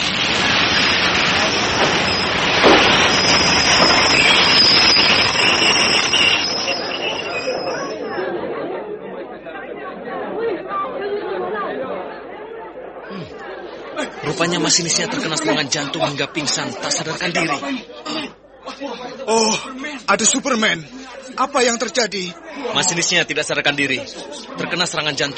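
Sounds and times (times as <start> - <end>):
heavy train grinding and squealing as it is forced to a stop: 0.0 - 8.2
crowd chattering: 0.0 - 25.3
laughter: 13.0 - 23.2, 23.8 - 25.3
speech: 14.8 - 25.3.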